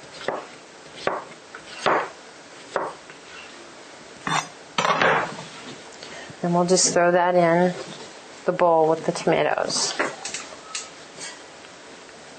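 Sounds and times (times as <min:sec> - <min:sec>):
knife cutting a cucumber lengthwise on a board: 0:00.2 - 0:03.0
speech: 0:06.4 - 0:07.9, 0:08.5 - 0:10.1.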